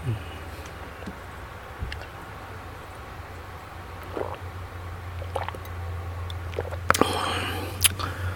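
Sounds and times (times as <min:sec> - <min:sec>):
low hum: 0:00.0 - 0:08.3
swallow: 0:04.0 - 0:04.5, 0:05.2 - 0:05.7, 0:06.3 - 0:08.2
person sipping water: 0:04.0 - 0:04.6, 0:05.2 - 0:08.2.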